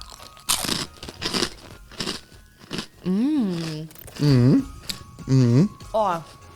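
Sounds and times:
crunching and chewing a speculoos-flavored cookie: 0.0s - 6.5s
eater humming pleased mmm: 3.0s - 5.9s
speech: 3.1s - 4.7s, 5.3s - 6.4s.

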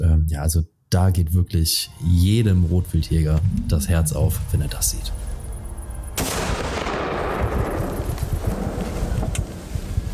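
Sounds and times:
steady outdoor wind: 0.0s - 10.1s
speech: 0.4s - 5.2s
rifle shot during a hunt: 6.2s - 7.7s.

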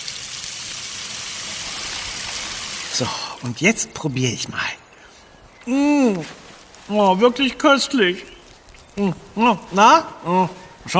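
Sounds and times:
water rinsing fresh produce picked from a field: 0.0s - 3.6s
speech: 3.0s - 4.8s, 5.6s - 8.4s, 9.0s - 10.9s.

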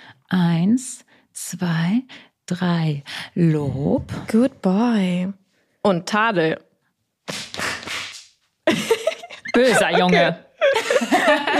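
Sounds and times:
speech: 0.3s - 6.7s, 8.7s - 8.9s, 9.6s - 11.5s
hand slaps imitating a whip crack: 7.2s - 8.4s
laughter: 8.7s - 11.5s.

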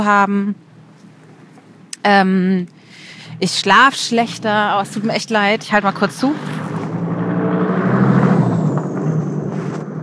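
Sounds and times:
speech: 0.0s - 0.6s, 2.0s - 6.6s
road noise: 0.0s - 10.0s
vehicle engine drone driving past outside: 3.0s - 10.0s.

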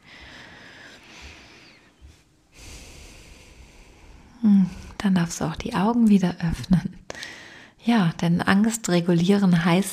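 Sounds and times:
slow deep breathing: 0.0s - 5.0s, 7.1s - 7.8s
speech: 4.4s - 7.0s, 7.9s - 9.9s.

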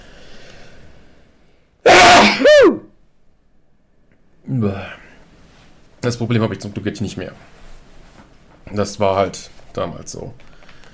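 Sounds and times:
person sneezing: 1.9s - 2.8s
speech: 6.1s - 7.6s, 8.7s - 10.5s.

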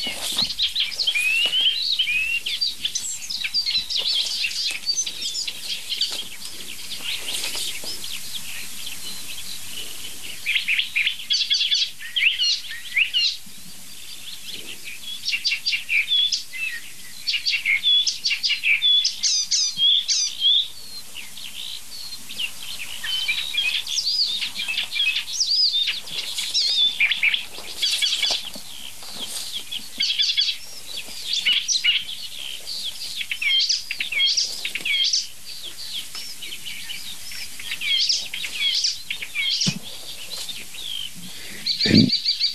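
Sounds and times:
single bird chirping and calling: 0.0s - 42.5s.

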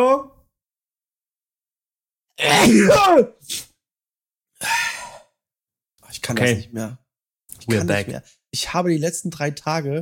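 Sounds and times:
speech: 2.4s - 3.7s, 6.1s - 7.0s, 7.6s - 10.0s
person sneezing: 2.4s - 3.8s.

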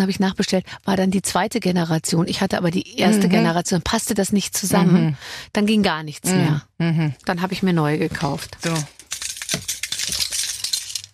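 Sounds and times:
speech: 0.0s - 9.7s
keychain with heavy brass pendant jingling: 8.6s - 11.1s.

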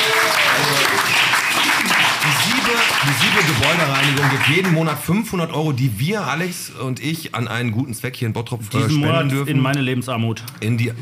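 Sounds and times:
audience applause at a live event in Bottrop: 0.0s - 5.2s
speech: 3.1s - 11.0s.

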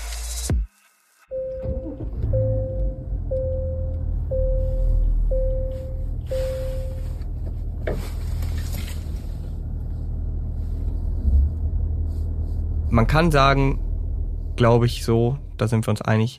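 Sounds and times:
evenly spaced electronic chimes: 1.3s - 7.0s
large luxury SUV engine idling at standstill: 1.3s - 16.0s
speech: 13.0s - 13.8s, 14.6s - 16.3s.

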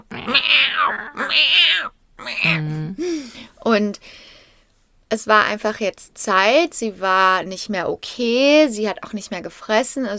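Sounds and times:
person's voice imitating an old cat's meows: 0.0s - 3.0s
speech: 3.7s - 4.2s, 5.1s - 10.1s.

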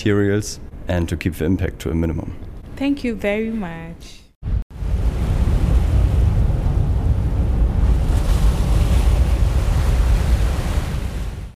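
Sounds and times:
speech: 0.0s - 4.2s
ocean waves roaring at sea in the Atlantic Ocean behind the Canary Islands: 4.4s - 11.5s
gusting wind buffeting the microphone on a ship deck: 4.5s - 11.5s.

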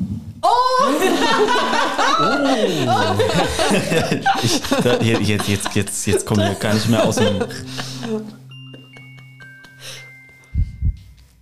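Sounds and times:
laughter: 0.5s - 9.9s
speech: 0.8s - 8.4s
heartbeat sound effect with two deep lub-dub thumps: 10.5s - 11.3s.

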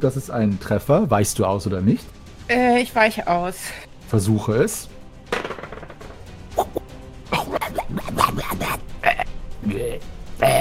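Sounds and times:
speech: 0.0s - 4.9s
guttural burps: 6.6s - 10.5s
throaty vocal noises: 6.6s - 10.5s.

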